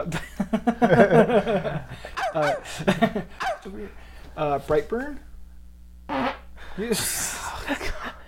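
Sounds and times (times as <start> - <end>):
speech: 0.0 - 1.6, 2.4 - 4.0, 4.6 - 5.4, 6.8 - 7.2
laughter: 0.0 - 3.6
fart: 6.1 - 6.5.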